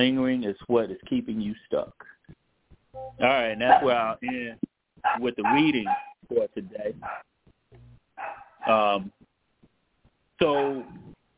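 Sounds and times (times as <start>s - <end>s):
speech: 0.0s - 2.4s, 3.0s - 9.2s, 10.4s - 11.1s
dog barking: 3.6s - 4.0s, 5.0s - 6.2s, 7.0s - 7.3s, 8.2s - 8.9s, 10.4s - 11.1s.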